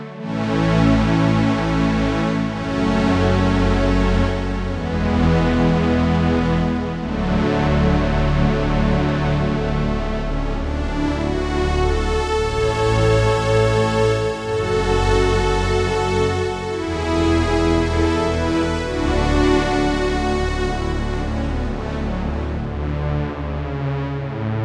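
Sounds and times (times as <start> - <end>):
OBXA warm string pad: 0.4 - 24.4.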